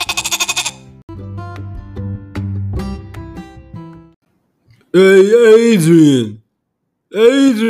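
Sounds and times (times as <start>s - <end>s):
goat bleating: 0.0s - 0.9s
speech: 4.9s - 6.4s, 7.1s - 7.6s.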